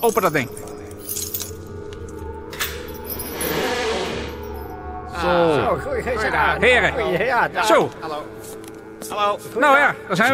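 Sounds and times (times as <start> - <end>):
speech: 0.0 - 1.2, 5.2 - 8.5, 9.1 - 10.3
keys jingling at a door: 0.0 - 4.7.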